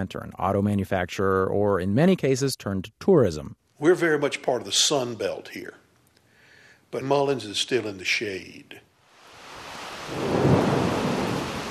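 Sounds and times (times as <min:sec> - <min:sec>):
speech: 0:00.0 - 0:05.8, 0:06.9 - 0:08.9, 0:10.1 - 0:10.4
heavy rain pouring in front of an old tobacco warehouse in Mullins South Carolina: 0:09.2 - 0:11.6
low rumble of thunder: 0:09.9 - 0:11.6.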